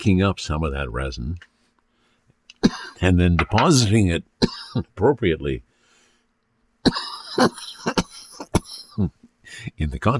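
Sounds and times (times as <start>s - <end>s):
speech: 0.0s - 1.5s, 2.6s - 5.7s, 6.8s - 10.1s
person coughing while testing cannabis concentrate: 2.6s - 3.0s, 4.4s - 4.9s, 6.8s - 9.1s.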